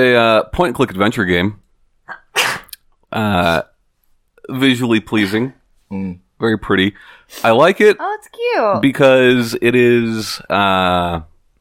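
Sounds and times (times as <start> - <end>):
speech: 0.0 - 3.7, 4.5 - 11.3
sneeze: 2.1 - 2.8.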